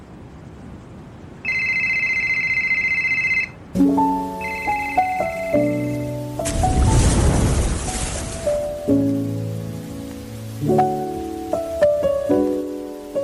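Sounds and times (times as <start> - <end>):
phone ringing: 1.4 - 3.6, 4.4 - 5.9
hissing static: 3.8 - 13.2
melodic run of beeping notes: 4.0 - 6.3.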